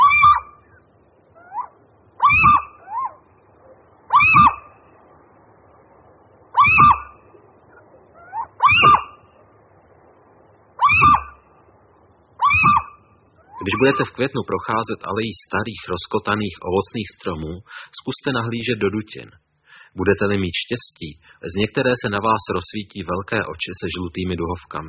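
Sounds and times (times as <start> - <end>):
female little owl giving softer answering calls: 0.0 - 0.5, 1.4 - 4.8, 6.5 - 9.2, 10.8 - 11.4, 12.4 - 14.2
male little owl calling excitedly in spring: 0.0 - 5.1, 6.5 - 9.4, 10.8 - 11.5, 12.4 - 15.1
speech: 13.6 - 19.4, 20.0 - 24.8.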